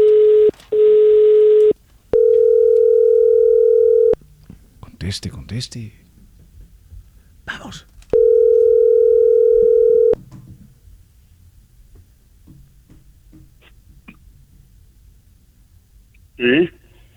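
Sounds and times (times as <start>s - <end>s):
faint clicks: 0.0s - 3.0s
telephone dial tone: 0.0s - 4.2s, 8.1s - 10.2s
handling noises: 0.0s - 4.8s, 5.8s - 14.8s
speech: 5.1s - 6.0s, 16.4s - 16.7s.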